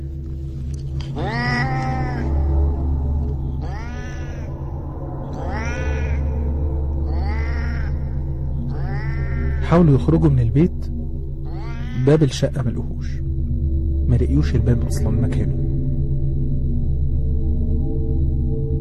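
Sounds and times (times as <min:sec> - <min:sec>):
steady low hum: 0:00.0 - 0:18.8
cat meowing: 0:01.1 - 0:02.5, 0:03.6 - 0:04.5, 0:05.3 - 0:06.2, 0:07.1 - 0:08.0, 0:08.7 - 0:09.7, 0:11.5 - 0:12.1
speech: 0:01.2 - 0:01.4, 0:09.7 - 0:11.0, 0:12.0 - 0:13.2, 0:14.1 - 0:15.7.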